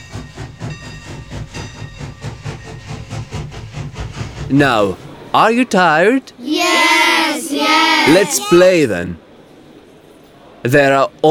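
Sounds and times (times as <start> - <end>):
original steam train chugging in a railway museum: 0.0 - 5.3, 6.5 - 8.7
speech: 4.5 - 6.9, 7.6 - 9.2, 10.6 - 11.3.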